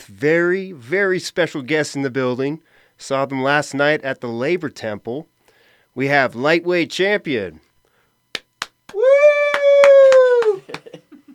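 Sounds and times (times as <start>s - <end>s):
speech: 0.1s - 5.3s, 6.0s - 7.7s
sharp hand claps in a steady rhythm: 8.3s - 11.0s
laughter: 10.3s - 11.3s.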